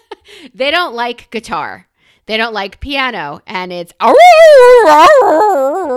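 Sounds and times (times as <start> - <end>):
speech: 0.4 - 5.9
dogs howling: 4.1 - 5.9.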